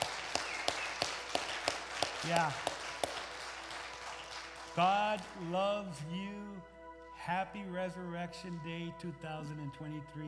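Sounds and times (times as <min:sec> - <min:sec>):
audience clapping: 0:00.0 - 0:05.6
speech: 0:02.2 - 0:02.7, 0:04.8 - 0:10.2.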